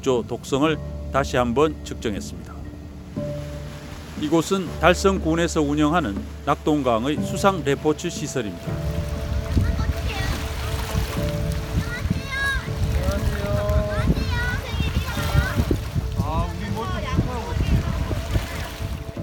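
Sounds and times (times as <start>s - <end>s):
speech: 0.0s - 2.6s, 4.2s - 9.1s
river water splashing around playing children: 0.0s - 19.2s
children shouting and calling out in high voices: 11.8s - 15.7s.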